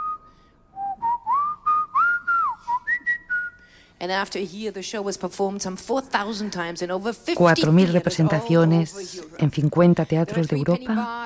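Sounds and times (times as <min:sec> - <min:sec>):
person whistling an opera melody: 0:00.0 - 0:03.6
speech: 0:04.0 - 0:11.2.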